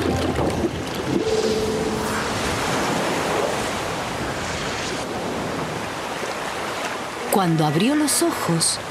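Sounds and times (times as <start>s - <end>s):
wind rushing through surf: 0.0s - 5.8s
powerful ocean waves of white foam crashing: 0.0s - 8.8s
speech: 7.4s - 8.8s.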